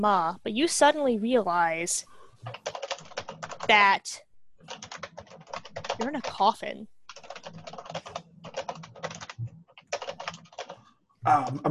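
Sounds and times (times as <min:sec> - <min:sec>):
speech: 0:00.0 - 0:02.8, 0:03.7 - 0:04.9, 0:06.0 - 0:06.9, 0:11.3 - 0:11.6
loud computer keyboard typing: 0:02.4 - 0:03.9, 0:04.6 - 0:10.8.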